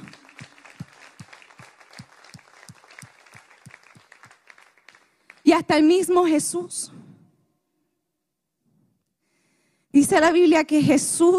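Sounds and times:
audience applauding: 0.0s - 5.5s
speech: 5.5s - 7.0s, 10.1s - 11.3s.

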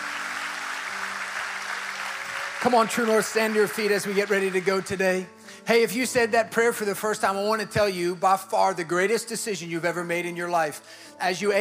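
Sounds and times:
crowd clapping steadily: 0.0s - 5.3s
speech: 2.6s - 11.5s.

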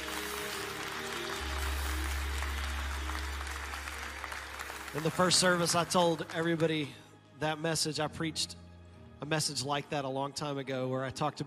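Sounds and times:
congregation clapping hands in sustained applause: 0.0s - 6.9s
speech: 4.9s - 8.6s, 9.2s - 11.4s.

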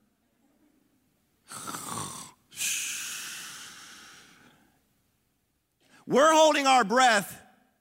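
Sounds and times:
snoring: 1.5s - 2.4s
speech: 6.1s - 7.4s.

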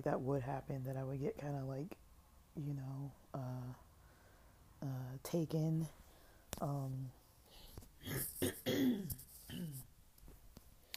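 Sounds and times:
speech: 0.0s - 2.0s, 2.6s - 3.8s, 4.8s - 6.0s, 6.6s - 9.9s
loud throat clearing with rough guttural bursts: 8.0s - 9.9s.

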